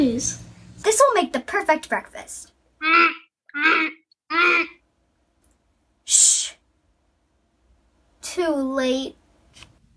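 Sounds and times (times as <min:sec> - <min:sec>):
speech: 0:00.1 - 0:04.8, 0:08.4 - 0:09.2
goose honking: 0:02.8 - 0:04.8.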